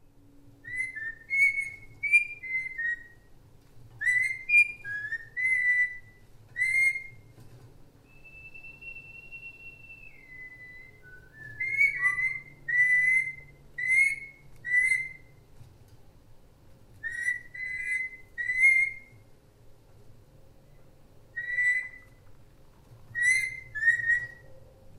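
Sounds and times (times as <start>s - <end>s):
faint low hum: 0.0s - 24.9s
parrot whistling a jazz tune: 0.6s - 3.3s, 4.0s - 7.2s, 8.0s - 15.3s, 17.0s - 19.2s, 21.3s - 22.2s, 23.1s - 24.5s.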